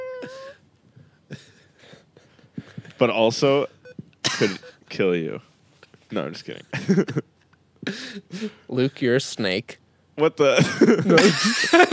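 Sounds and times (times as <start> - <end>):
person imitating a shy kitten's meow: 0.0 - 0.4
speech: 0.2 - 0.6, 3.0 - 3.8, 4.4 - 5.5, 6.1 - 7.2, 8.2 - 11.9
soft low thumps: 3.8 - 4.2.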